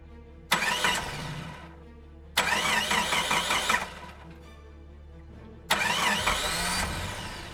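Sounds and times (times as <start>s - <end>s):
car engine cranking and starting in the rain: 0.5s - 1.8s, 2.4s - 4.3s, 5.7s - 7.5s.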